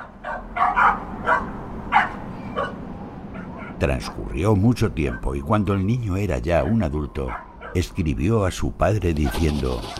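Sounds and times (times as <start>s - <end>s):
small puppy barking: 0.0s - 4.2s, 5.1s - 5.4s, 6.6s - 7.8s, 9.2s - 9.9s
speech: 3.8s - 9.9s.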